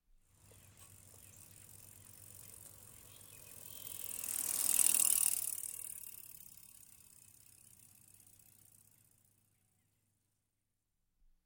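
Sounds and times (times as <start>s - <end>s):
bicycle passing by: 0.2s - 10.1s.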